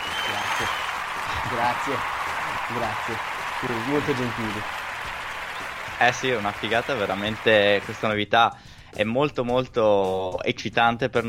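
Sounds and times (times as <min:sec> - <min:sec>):
crowd applause: 0:00.0 - 0:08.1
people cheering: 0:00.0 - 0:08.1
speech: 0:01.5 - 0:04.8, 0:06.0 - 0:11.2.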